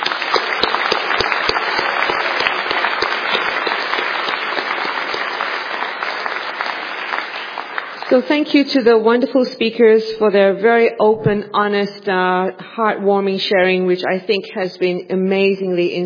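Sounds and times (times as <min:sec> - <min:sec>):
room full of people applauding: 0:00.0 - 0:08.3
speech: 0:08.1 - 0:16.0.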